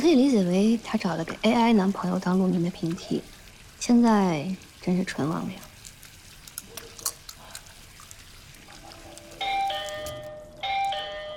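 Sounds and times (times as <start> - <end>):
speech: 0.0 - 5.7
doorbell ringing: 9.4 - 11.3.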